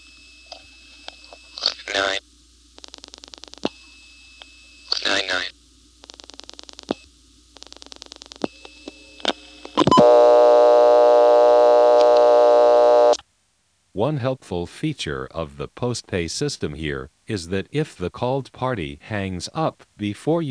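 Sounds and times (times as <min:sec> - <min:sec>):
faint steady 1 kHz tone: 0:00.0 - 0:02.2, 0:02.8 - 0:05.6, 0:06.8 - 0:13.2
loud buzzy second dial tone: 0:02.8 - 0:13.2
speech: 0:14.0 - 0:20.4.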